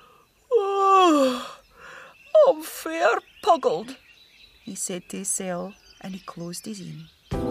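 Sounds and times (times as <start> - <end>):
person yawning: 0.5 - 1.6
speech: 3.1 - 4.0, 4.7 - 7.4.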